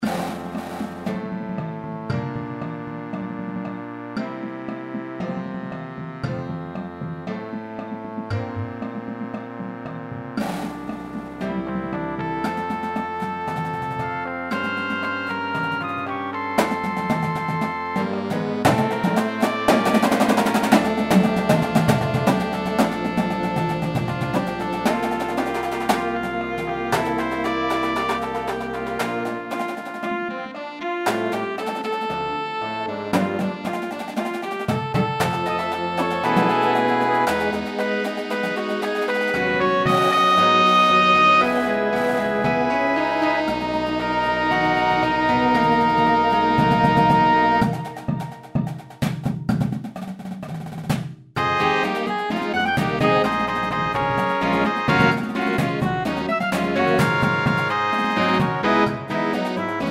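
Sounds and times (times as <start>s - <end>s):
percussion: 0.0s - 59.8s.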